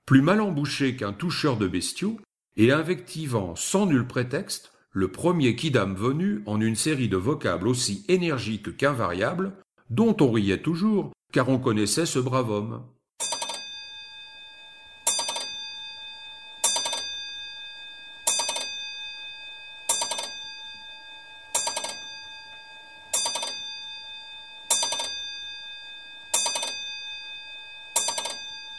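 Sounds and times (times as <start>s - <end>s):
speech: 0.1s - 13.0s
Comtoise grandfather clock striking: 13.2s - 28.7s.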